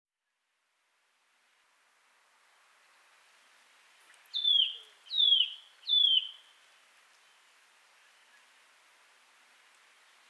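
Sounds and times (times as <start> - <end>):
Eurasian nuthatch Sitta europaea piping falling whistle: 4.4 - 6.4.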